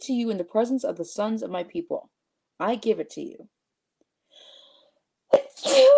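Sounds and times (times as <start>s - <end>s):
speech: 0.0s - 3.6s, 5.6s - 5.9s
person sneezing: 5.3s - 5.9s.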